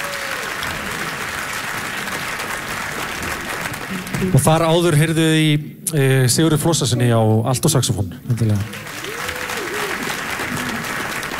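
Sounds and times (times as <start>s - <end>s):
audience applause for a clarinet player after a live musical performance: 0.0s - 5.0s, 8.3s - 11.3s
speech: 4.2s - 9.1s.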